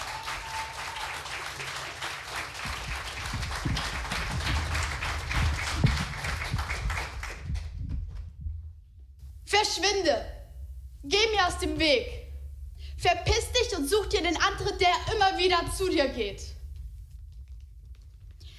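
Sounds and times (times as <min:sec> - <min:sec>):
people cheering: 0:00.0 - 0:07.5
audience applause welcoming a performer: 0:00.0 - 0:07.8
speech: 0:09.6 - 0:10.4, 0:11.0 - 0:12.2, 0:13.0 - 0:16.5.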